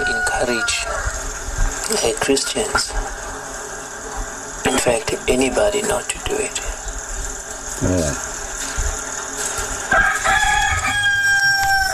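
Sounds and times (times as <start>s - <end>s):
rooster crowing: 0.0s - 1.4s, 9.8s - 11.9s
quiet noise: 0.0s - 11.9s
speech: 0.4s - 1.0s, 1.9s - 3.2s, 4.8s - 6.8s, 7.8s - 8.3s.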